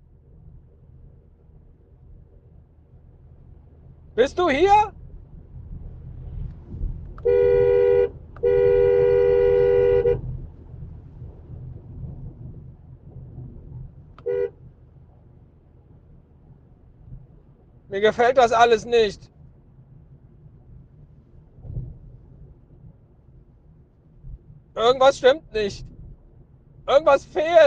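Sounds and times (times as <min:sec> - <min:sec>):
low rumbling background: 0:00.0 - 0:27.6
speech: 0:04.2 - 0:05.0, 0:18.0 - 0:19.3, 0:24.9 - 0:25.9, 0:26.9 - 0:27.6
car horn honking: 0:07.2 - 0:10.3, 0:14.2 - 0:14.6.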